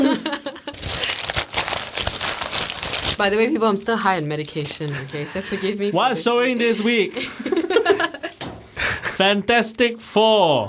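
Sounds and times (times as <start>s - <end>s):
laughter: 0.0s - 0.8s, 6.6s - 9.2s
paper crinkling and rustling while being handled: 0.7s - 3.2s
speech: 3.2s - 8.2s, 9.2s - 10.6s.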